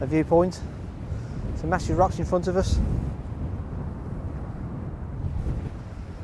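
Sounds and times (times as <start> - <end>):
speech: 0.0 - 0.8, 1.6 - 3.0
strong wind at a coastal viewpoint roaring across the microphone: 0.0 - 6.2.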